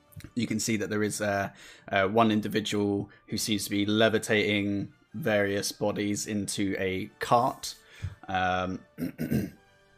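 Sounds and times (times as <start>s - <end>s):
speech: 0.4s - 9.6s
person clearing throat: 8.9s - 9.6s.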